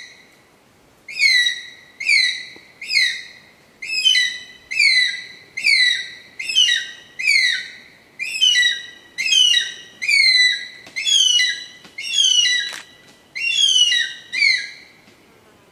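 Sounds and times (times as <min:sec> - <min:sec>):
Pithecophaga jefferyi eagle calling: 0:01.1 - 0:14.9.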